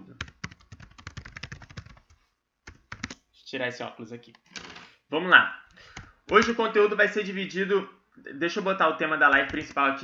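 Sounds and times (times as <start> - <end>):
typing on a computer keyboard: 0.2 - 3.2, 5.8 - 6.6, 9.4 - 10.0
speech: 3.5 - 4.5, 5.1 - 5.6, 6.3 - 10.0.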